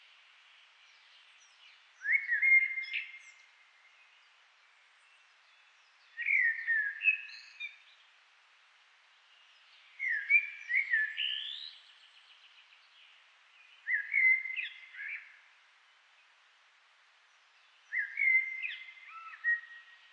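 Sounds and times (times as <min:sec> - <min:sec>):
common blackbird Turdus merula singing: 0:00.9 - 0:03.4, 0:05.4 - 0:07.9, 0:09.9 - 0:12.3, 0:13.6 - 0:15.4, 0:17.9 - 0:20.1.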